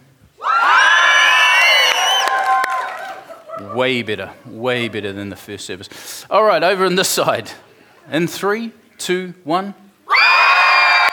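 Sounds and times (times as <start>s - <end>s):
church audience cheering and whooping: 0.4s - 4.0s, 10.1s - 11.1s
laughter: 2.9s - 5.3s
speech: 3.8s - 9.8s.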